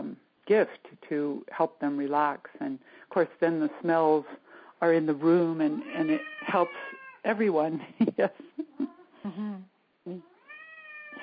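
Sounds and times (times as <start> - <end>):
speech: 0.5 - 8.5, 9.2 - 10.2
cat meowing: 5.8 - 7.2, 10.2 - 11.2.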